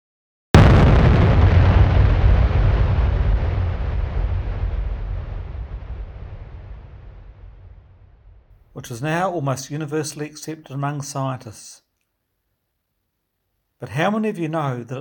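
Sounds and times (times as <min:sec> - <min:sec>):
huge explosion with deep roaring rumble: 0:00.6 - 0:08.6
speech: 0:08.8 - 0:11.8, 0:13.8 - 0:14.9.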